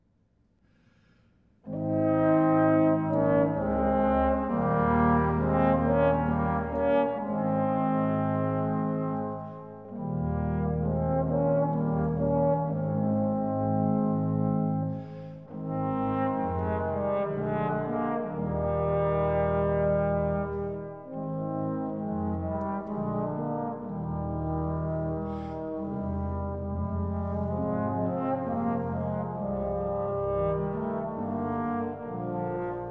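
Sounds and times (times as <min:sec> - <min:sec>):
two trombones playing a baroque adagio: 0:01.6 - 0:32.8.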